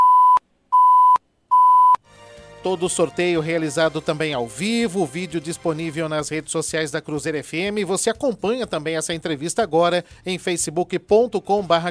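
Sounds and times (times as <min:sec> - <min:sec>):
timer alert electronic beeps in a live radio interview: 0:00.0 - 0:02.0
speech: 0:02.6 - 0:11.8.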